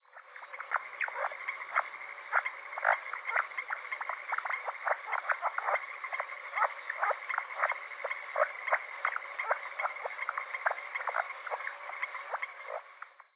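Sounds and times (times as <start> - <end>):
Lithobates vaillanti frog: 0.0 - 13.3.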